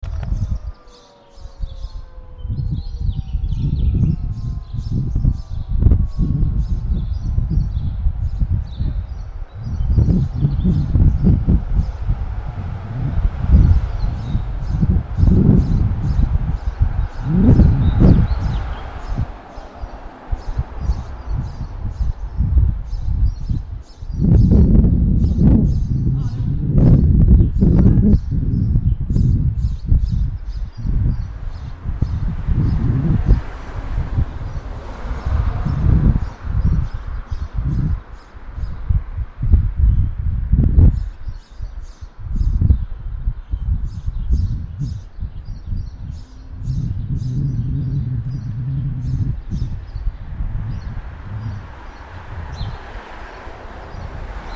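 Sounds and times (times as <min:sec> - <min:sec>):
siren: 0:00.0 - 0:08.1
traffic: 0:00.0 - 0:28.4, 0:29.0 - 0:43.4, 0:44.5 - 0:54.5
wind: 0:00.0 - 0:54.5.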